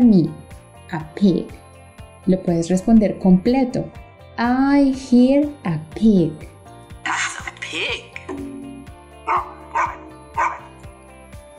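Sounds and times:
speech: 0:00.0 - 0:01.6, 0:02.2 - 0:06.5
light music: 0:00.0 - 0:11.5
dog barking: 0:09.3 - 0:10.8.

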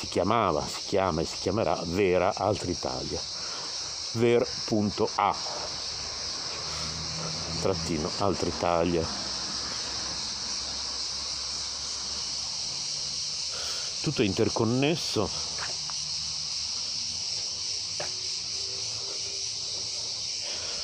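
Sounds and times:
speech: 0:00.0 - 0:03.4, 0:04.1 - 0:05.7, 0:07.6 - 0:09.2, 0:14.0 - 0:15.5
cicadas droning: 0:00.0 - 0:20.8.

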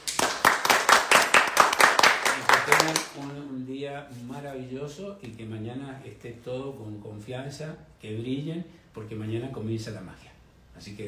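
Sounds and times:
small group applauding themselves: 0:00.0 - 0:03.4
speech: 0:02.7 - 0:11.0.

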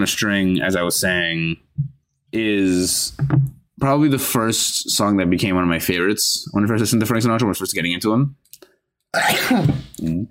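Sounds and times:
speech: 0:00.0 - 0:08.6, 0:09.2 - 0:10.2
strong sneeze: 0:09.2 - 0:10.0.

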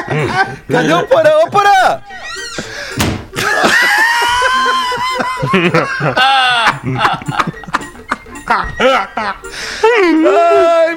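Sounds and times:
people laughing: 0:00.0 - 0:01.2, 0:03.4 - 0:10.4
speech: 0:00.1 - 0:02.7, 0:05.5 - 0:07.6, 0:08.5 - 0:10.9
door slamming shut: 0:02.5 - 0:03.4.

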